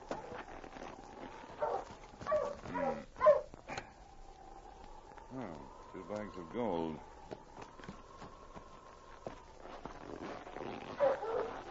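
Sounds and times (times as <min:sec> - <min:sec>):
faint steady hiss: 0:00.0 - 0:11.6
husky sled dog giving short excited barks: 0:01.6 - 0:03.6, 0:10.9 - 0:11.6
speech: 0:06.3 - 0:07.4.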